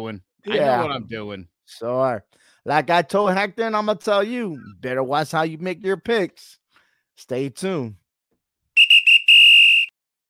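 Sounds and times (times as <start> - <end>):
speech: 0.0 - 6.6, 7.2 - 8.0
referee whistle blasts: 8.8 - 9.9.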